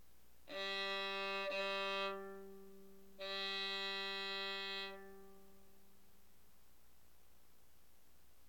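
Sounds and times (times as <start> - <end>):
violin playing the note G: 0.5 - 5.7.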